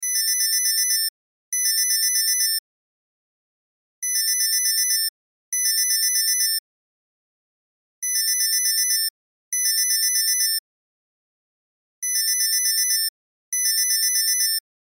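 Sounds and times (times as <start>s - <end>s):
cell phone ringtone: 0.0s - 2.6s, 4.0s - 6.6s, 8.1s - 10.6s, 12.1s - 14.6s.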